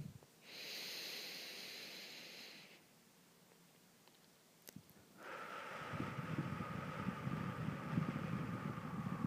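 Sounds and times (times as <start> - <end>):
slow deep breathing during a relaxation exercise: 0.4 - 2.9, 5.2 - 9.2.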